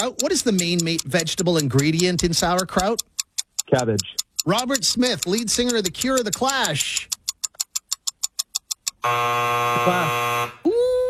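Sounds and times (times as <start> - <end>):
speech: 0.0 - 3.1, 3.7 - 7.2, 9.0 - 11.0
sharp countdown ticks: 0.0 - 10.7
harsh game-show time-up buzzer: 9.0 - 10.6.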